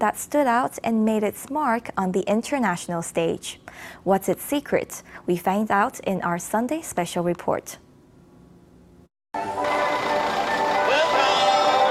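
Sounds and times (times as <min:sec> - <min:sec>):
speech: 0:00.0 - 0:07.8
lively folk tune at a leisure farm in Taiwan: 0:09.4 - 0:11.8.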